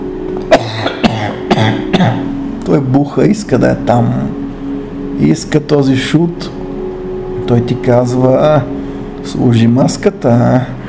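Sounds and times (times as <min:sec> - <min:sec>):
low steady hum: 0:00.0 - 0:10.8
person coughing sharply: 0:00.5 - 0:02.3
speech: 0:02.0 - 0:04.4, 0:05.2 - 0:06.6, 0:07.5 - 0:10.8.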